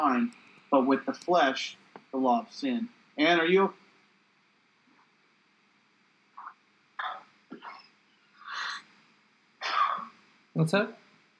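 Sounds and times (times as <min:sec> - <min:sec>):
speech: 0:00.0 - 0:03.8, 0:10.6 - 0:11.0
person having a coughing fit: 0:07.0 - 0:07.9, 0:09.6 - 0:10.1.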